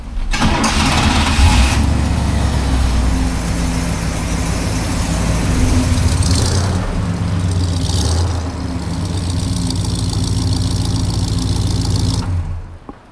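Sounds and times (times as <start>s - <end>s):
1967 Pontiac Grand Prix engine starting and idling: 0.0s - 13.0s.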